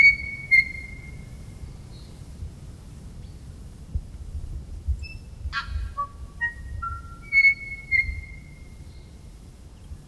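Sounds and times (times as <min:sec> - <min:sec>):
tui singing: 0:00.0 - 0:01.3, 0:05.1 - 0:08.6.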